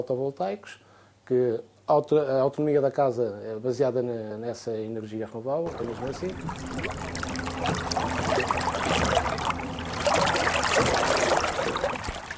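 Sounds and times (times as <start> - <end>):
speech: 0.0 - 7.0
boat engine hum on a river: 5.7 - 12.3
river water churning and splashing: 5.7 - 12.3.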